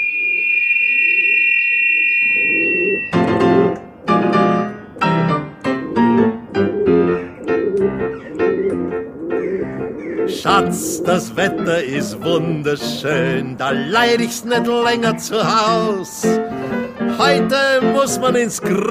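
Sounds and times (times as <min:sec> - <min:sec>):
steady high whistling tone: 0:00.0 - 0:03.9
domestic pigeon cooing: 0:02.4 - 0:12.4
speech: 0:10.4 - 0:16.5, 0:17.2 - 0:18.8.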